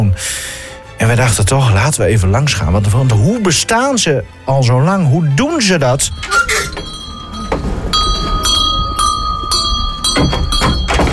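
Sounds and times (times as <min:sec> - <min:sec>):
speech: 0:00.0 - 0:06.6
busy rumbling background: 0:05.8 - 0:11.1
shop door bell jingling as visitors enter a hat shop in Groningen: 0:05.8 - 0:11.1.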